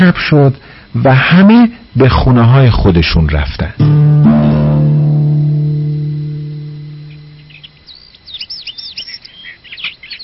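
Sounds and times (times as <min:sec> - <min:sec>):
speech: 0:00.0 - 0:04.3
low sustained tone: 0:03.8 - 0:07.8
birds chirping in the morning: 0:04.3 - 0:10.2.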